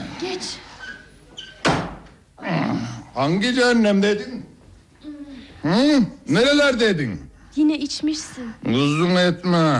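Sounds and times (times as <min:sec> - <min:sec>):
speech: 0:00.4 - 0:00.7, 0:03.2 - 0:04.5, 0:05.7 - 0:09.7
door pulled open with a loud thud and rattle: 0:01.4 - 0:02.1.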